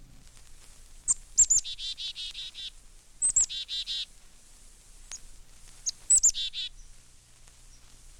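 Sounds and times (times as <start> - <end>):
Black-capped Chickadee calls: 1.0 - 4.1, 5.1 - 7.0.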